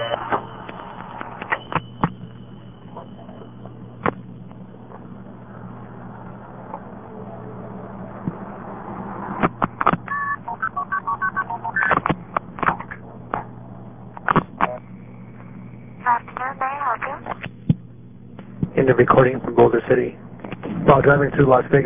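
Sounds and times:
payphone multi-frequency tones dialing the operator: 0.0s - 2.1s, 10.0s - 12.0s
low hum: 0.0s - 21.8s
speech: 18.9s - 20.2s, 20.9s - 21.8s.

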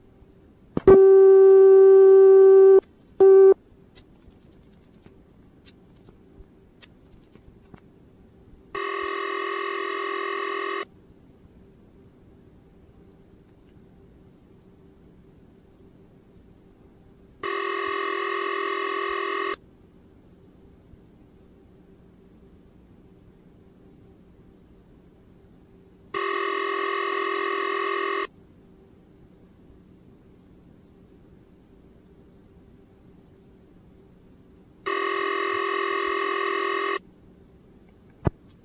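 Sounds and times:
old telephone exchange steady tone: 0.9s - 3.6s, 8.8s - 10.9s, 17.4s - 19.6s, 26.2s - 28.3s, 34.9s - 37.0s.

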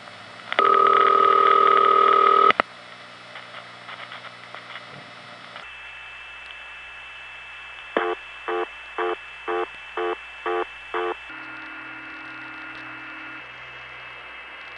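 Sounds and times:
telephone trunk line noise from an N3-family carrier lacking high frequencies: 0.0s - 14.7s
loud sustained tone: 8.0s - 14.5s.

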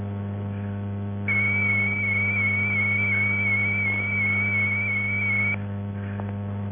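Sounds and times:
low hum: 0.0s - 6.7s
Datel 600 modem binary zero tone at 1,200 bits per second: 1.3s - 5.6s.

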